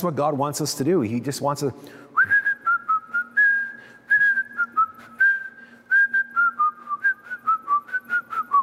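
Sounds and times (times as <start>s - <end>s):
speech: 0.0s - 2.4s
person whistling a melody: 2.2s - 8.6s.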